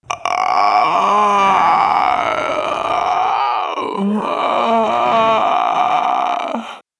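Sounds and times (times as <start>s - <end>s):
female zombie: 0.1s - 6.8s.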